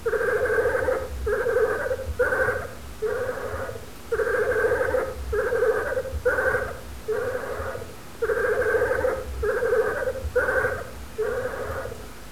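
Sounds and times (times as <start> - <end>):
European badger screeching: 0.1 - 12.0.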